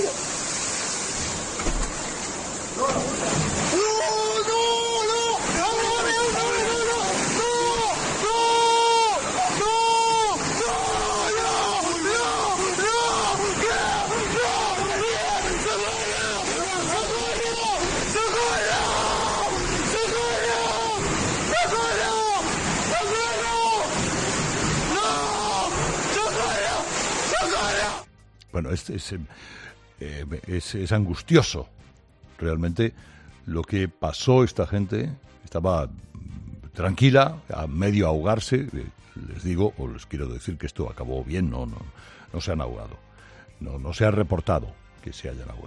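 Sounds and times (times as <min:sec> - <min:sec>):
floodwater rushing through a collapsing wall: 0:00.0 - 0:28.1
voices including a man's shouting and yelling: 0:03.7 - 0:28.1
speech: 0:28.9 - 0:31.8, 0:32.4 - 0:36.1, 0:36.8 - 0:45.6.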